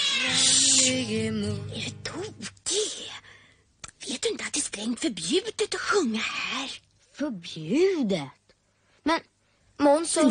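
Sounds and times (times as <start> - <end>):
cats yowling: 0.0 - 1.0
speech: 0.2 - 3.3, 4.2 - 8.4, 9.0 - 10.2.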